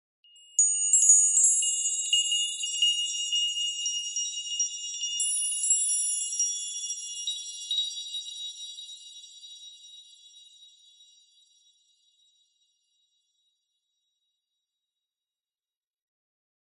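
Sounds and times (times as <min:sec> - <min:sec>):
medium high-pitched fairy dust bell tree twinkle sparkle: 0:00.2 - 0:13.4.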